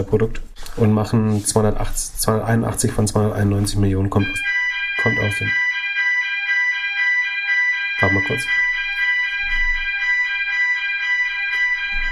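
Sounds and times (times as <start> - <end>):
speech: 0.0 - 5.6, 8.0 - 8.6
shrill electronic car alarm going off outside: 4.2 - 12.0.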